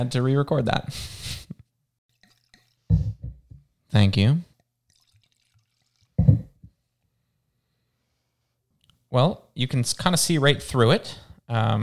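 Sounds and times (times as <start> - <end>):
speech: 0.0 - 1.6, 3.9 - 4.5, 9.1 - 11.8
Pinot red wine from a screw-top bottle pouring into a glass: 2.1 - 2.9, 4.5 - 6.4.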